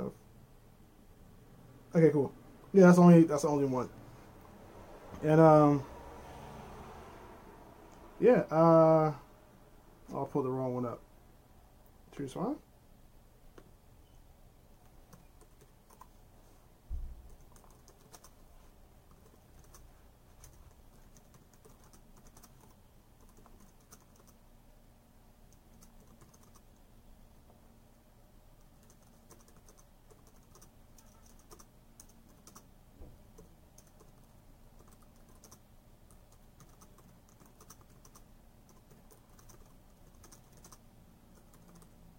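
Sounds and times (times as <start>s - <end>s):
speech: 2.0s - 4.0s, 5.2s - 5.9s, 8.2s - 9.2s, 10.1s - 11.0s, 12.2s - 12.6s
faint tapping on a computer keyboard: 14.8s - 16.1s, 17.3s - 18.4s, 19.1s - 19.8s, 20.4s - 24.4s, 25.5s - 26.7s, 28.8s - 32.7s, 33.3s - 42.1s.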